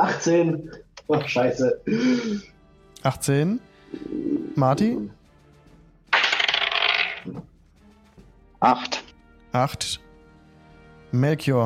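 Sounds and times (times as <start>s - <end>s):
speech: 0.0s - 5.2s, 7.2s - 7.5s, 8.6s - 10.0s, 11.1s - 11.6s
dice rolled for initiative in a tabletop role-playing game: 6.2s - 7.4s.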